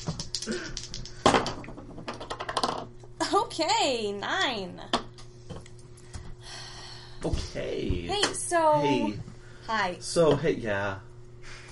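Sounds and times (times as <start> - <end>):
dice clattering across a tabletop: 0.0 - 2.9
speech: 3.5 - 5.0, 7.2 - 11.1.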